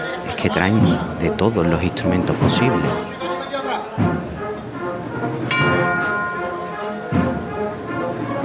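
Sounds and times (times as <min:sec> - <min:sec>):
murmur of crowd noise: 0:00.0 - 0:08.4
voices: 0:00.0 - 0:08.4
speech: 0:00.4 - 0:03.1, 0:04.0 - 0:04.3
bells ringing: 0:05.4 - 0:08.4.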